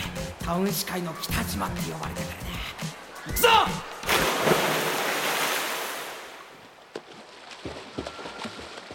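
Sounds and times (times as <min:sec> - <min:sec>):
speech: 0:00.5 - 0:04.6
splashing water from someone swimming butterfly stroke: 0:04.0 - 0:08.9.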